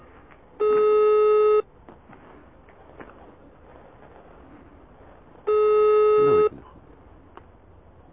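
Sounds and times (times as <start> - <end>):
buzzy phone ringback tones heard through the line: 0.6 - 1.7, 5.5 - 6.5.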